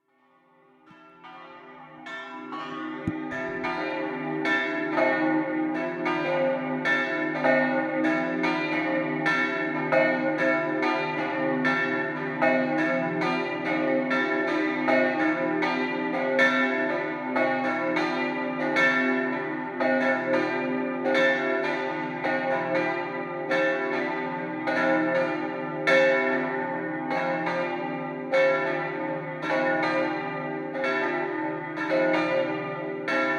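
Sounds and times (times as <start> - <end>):
double bells ringing: 1.2 - 33.3.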